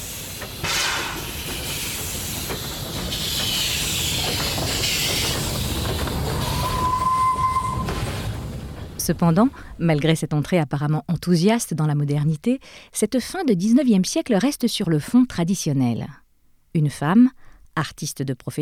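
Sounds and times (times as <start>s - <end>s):
constant hiss of steam from a steam train: 0.0s - 6.8s
steam train rumbling along the rails: 0.0s - 9.8s
short clear steam train whistle: 6.3s - 8.1s
speech: 9.1s - 18.5s.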